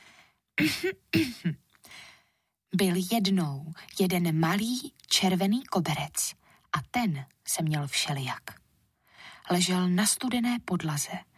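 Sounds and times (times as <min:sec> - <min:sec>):
person clearing their throat: 0:00.6 - 0:01.6
speech: 0:00.6 - 0:02.1, 0:02.7 - 0:08.6, 0:09.5 - 0:11.3.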